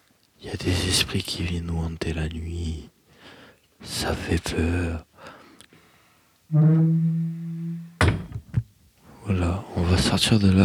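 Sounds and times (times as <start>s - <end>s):
speech: 0.4s - 3.0s, 3.8s - 5.1s, 6.5s - 7.9s, 9.2s - 10.6s
door creaking in a boarding school: 6.5s - 8.4s
door bumping into a person in a boarding school: 8.0s - 8.5s.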